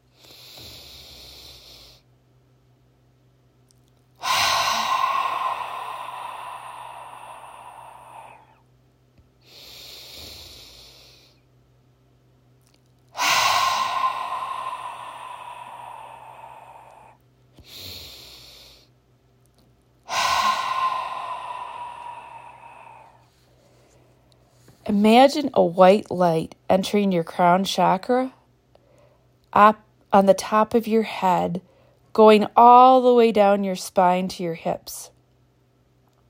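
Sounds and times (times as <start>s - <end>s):
deep guided breathing with loud hissing exhales: 0.1s - 2.1s, 4.2s - 8.6s, 9.4s - 11.4s, 13.1s - 18.9s, 20.1s - 24.1s
speech: 24.9s - 28.4s, 29.6s - 35.1s.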